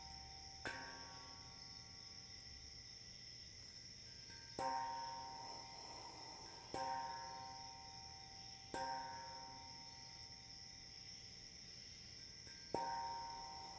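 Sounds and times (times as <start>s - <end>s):
crickets chirping: 0.0s - 13.7s.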